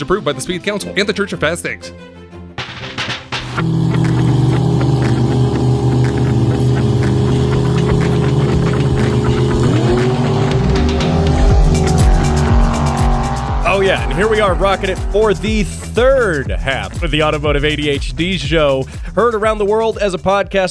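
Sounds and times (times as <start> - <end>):
speech: 0.0 - 2.2, 3.6 - 3.9, 14.0 - 20.6
motorsport car engine droning: 3.4 - 18.0.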